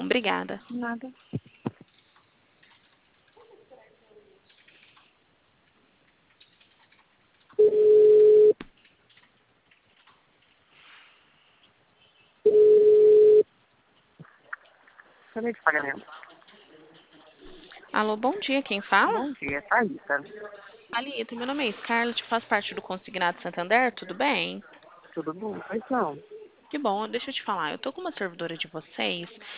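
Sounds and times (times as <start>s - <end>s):
speech: 0.1s - 1.4s, 15.4s - 16.2s, 18.0s - 29.5s
telephone ringback tone over a thin phone line: 7.6s - 8.6s, 12.5s - 13.4s.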